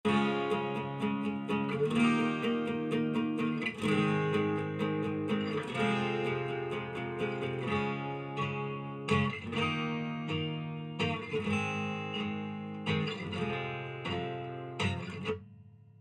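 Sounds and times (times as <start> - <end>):
acoustic music: 0.0 - 15.6.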